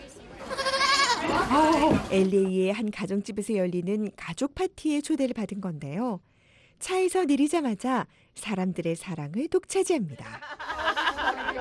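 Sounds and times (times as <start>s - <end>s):
dwarf goat kids bleating: 0.4s - 1.3s
speech: 1.5s - 10.7s
laughter: 10.2s - 11.5s.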